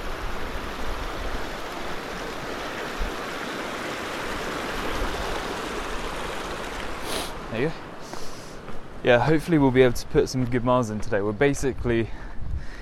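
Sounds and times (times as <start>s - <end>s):
river water flowing: 0.0s - 9.9s
speech: 7.6s - 7.9s, 9.0s - 12.2s.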